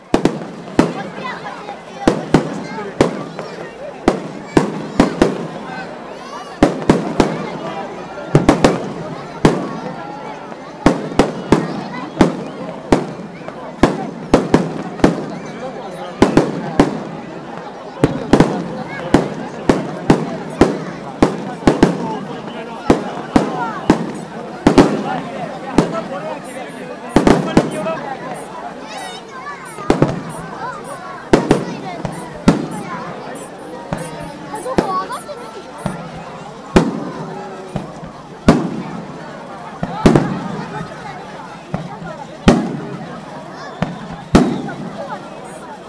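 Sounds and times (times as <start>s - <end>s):
fireworks exploding at a festival: 0.0s - 45.8s.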